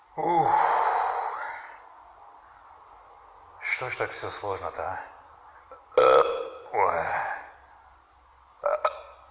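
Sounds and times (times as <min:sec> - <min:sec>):
speech: 0:00.2 - 0:00.7, 0:03.8 - 0:05.2
person burping: 0:05.7 - 0:07.0, 0:08.6 - 0:09.2.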